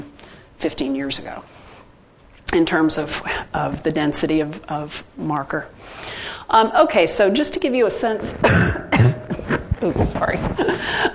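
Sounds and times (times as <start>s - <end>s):
speech: 0.0s - 1.6s, 2.5s - 8.8s, 9.8s - 11.1s
cough turned away from microphone: 8.4s - 9.6s
throat clearing: 8.4s - 9.6s.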